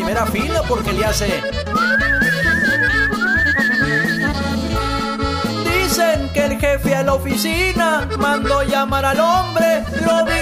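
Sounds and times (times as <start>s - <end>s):
steady rhythmic musical backing: 0.0s - 10.4s
speech: 0.2s - 3.1s, 6.6s - 10.4s
person whistling a warbling trilling melody: 1.6s - 4.4s.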